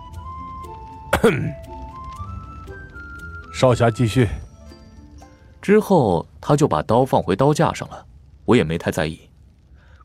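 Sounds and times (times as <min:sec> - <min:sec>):
man coughing in an audio drama: 0:01.2 - 0:01.6
speech: 0:01.2 - 0:01.7, 0:03.6 - 0:04.4, 0:05.6 - 0:09.3.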